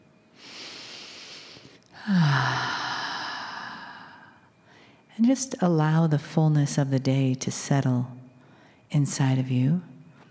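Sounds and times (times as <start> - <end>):
deep breath: 0.4 - 5.1, 8.4 - 8.9
speech: 2.0 - 2.8, 5.2 - 8.2, 8.9 - 9.9.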